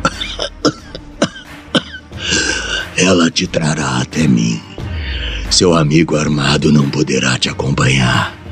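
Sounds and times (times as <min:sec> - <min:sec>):
breathless man coughing painfully on the telephone: 0:00.0 - 0:02.9
man's strained wheezy exhale: 0:02.2 - 0:02.9
speech: 0:03.0 - 0:04.7, 0:05.5 - 0:08.4.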